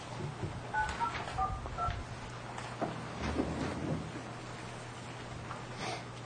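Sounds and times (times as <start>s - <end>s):
faint low hum: 0.2s - 6.1s
telephone keypad tones dialing an account code: 0.7s - 2.0s.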